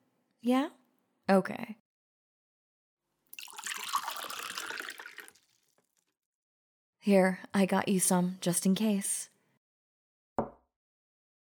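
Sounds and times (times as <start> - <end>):
speech: 0.4 - 1.8, 7.0 - 9.3
water running from a tap into a glass: 3.4 - 5.6.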